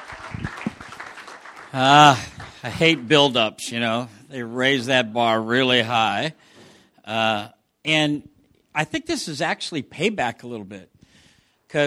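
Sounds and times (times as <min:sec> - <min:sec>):
audience applauding a speaker: 0:00.0 - 0:03.2
speech: 0:01.7 - 0:06.5, 0:07.1 - 0:10.9.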